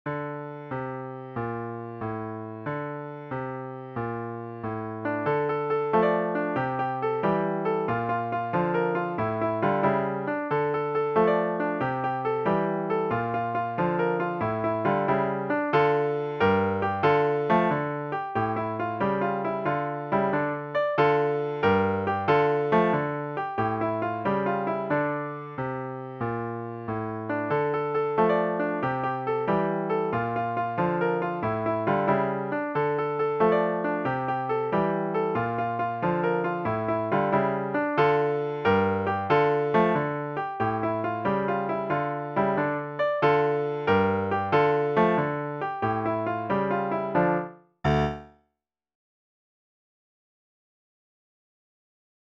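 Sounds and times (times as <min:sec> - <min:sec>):
easy piano music: 0:00.0 - 0:48.4.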